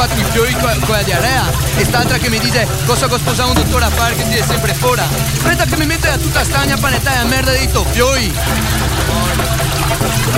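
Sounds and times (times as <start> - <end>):
speech: 0.0 - 9.5
boat motor rumbling: 0.0 - 10.3
laughter: 0.0 - 10.3.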